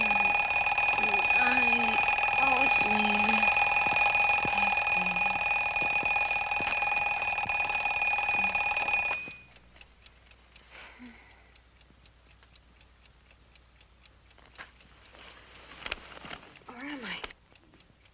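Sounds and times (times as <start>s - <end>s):
alarm clock ringing: 0.0s - 9.8s.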